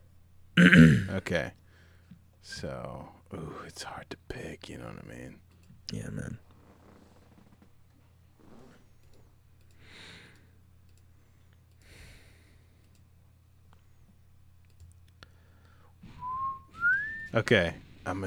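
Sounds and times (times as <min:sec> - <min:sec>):
low hum: 0:00.0 - 0:18.2
speech: 0:00.6 - 0:01.6, 0:02.4 - 0:06.4, 0:17.3 - 0:18.2
person whistling a tune: 0:16.2 - 0:17.4.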